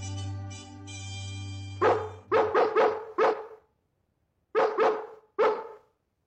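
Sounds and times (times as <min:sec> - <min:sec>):
dog barking at night: 0:01.8 - 0:03.6, 0:04.6 - 0:05.9.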